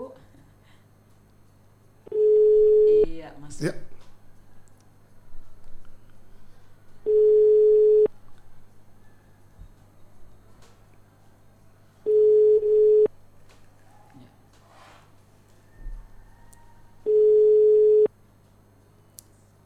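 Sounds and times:
faint noise: 0.0s - 19.6s
ringback tone of an unanswered outgoing telephone call: 2.1s - 3.2s, 7.0s - 8.1s, 12.1s - 13.1s, 17.0s - 18.1s
speech: 3.6s - 3.8s.

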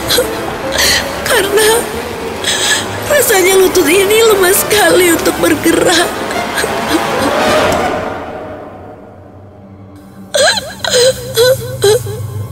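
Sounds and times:
steady noisy background: 0.0s - 12.5s
speech: 0.2s - 6.2s
person crying and sobbing in a dramatized scene: 10.3s - 12.5s.

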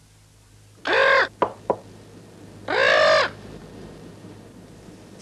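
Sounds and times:
female parrot squawking: 0.8s - 1.3s, 2.7s - 3.3s.

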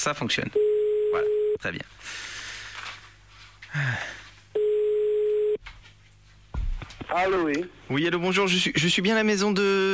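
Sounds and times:
speech: 0.0s - 2.4s, 3.7s - 4.2s, 7.0s - 9.9s
telephone line tone as a call is placed: 0.6s - 1.6s, 4.6s - 5.6s.

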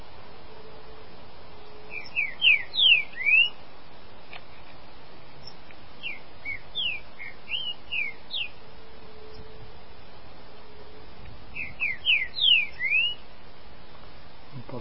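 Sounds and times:
green-winged saltator whistled song: 2.0s - 3.6s, 11.6s - 13.2s.

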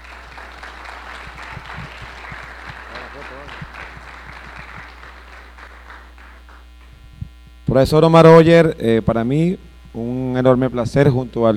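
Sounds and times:
audience applause at a distilled spirits congress: 0.0s - 6.7s
speech: 7.7s - 11.5s.

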